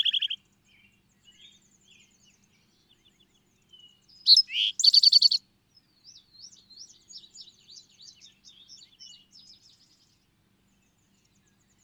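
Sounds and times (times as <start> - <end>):
bird twittering: 0.0 - 0.4, 4.2 - 5.4
bird chirping: 0.0 - 11.8.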